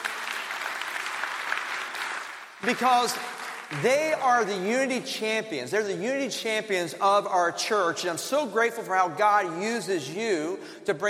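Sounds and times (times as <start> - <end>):
audience applause at a church gathering: 0.0 - 4.1
speech: 2.6 - 11.0.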